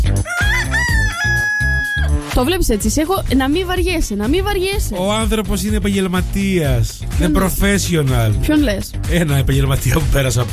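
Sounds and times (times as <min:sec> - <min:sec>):
rooster crowing: 0:00.2 - 0:02.2
thumping low beat: 0:02.0 - 0:10.5
speech: 0:02.4 - 0:10.5.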